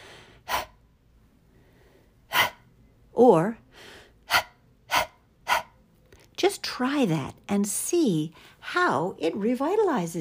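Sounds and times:
hard panting breaths as a breathing exercise: 0:00.0 - 0:00.9, 0:01.7 - 0:02.7, 0:03.7 - 0:05.8
speech: 0:03.2 - 0:03.6, 0:06.4 - 0:10.1.

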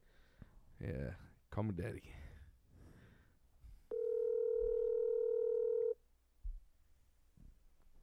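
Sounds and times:
speech: 0:00.8 - 0:02.3
phone call ring tone on speakerphone: 0:03.9 - 0:06.0.

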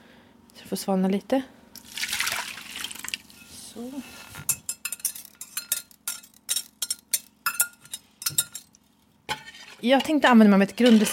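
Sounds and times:
speech: 0:00.7 - 0:01.6, 0:03.8 - 0:04.5, 0:09.8 - 0:11.1
warm cardamom milk pouring into a bowl: 0:01.8 - 0:03.3.

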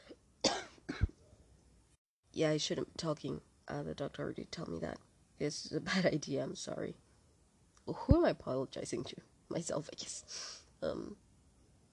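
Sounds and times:
raspy coughs: 0:00.4 - 0:01.2
speech: 0:02.4 - 0:07.0, 0:07.9 - 0:11.2.

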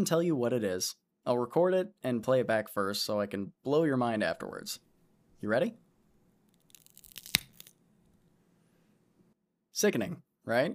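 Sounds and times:
speech: 0:00.0 - 0:05.8, 0:09.8 - 0:10.7
crisp stalk of fresh celery snapped in half: 0:06.6 - 0:07.8.

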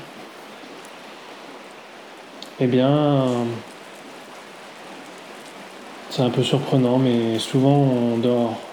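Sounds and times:
steady rain falling: 0:00.0 - 0:08.7
speech: 0:02.6 - 0:03.7, 0:06.2 - 0:08.7.

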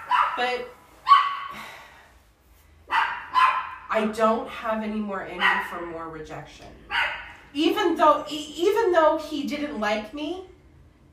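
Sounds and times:
dogs barking: 0:00.0 - 0:01.5, 0:02.9 - 0:03.9, 0:05.4 - 0:05.9, 0:06.9 - 0:07.5
speech: 0:00.4 - 0:00.8, 0:04.0 - 0:10.5.

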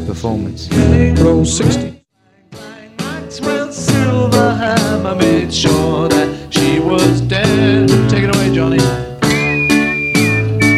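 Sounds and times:
speech: 0:00.1 - 0:02.0, 0:04.5 - 0:08.8
human whistling a solo melody: 0:07.9 - 0:10.7.

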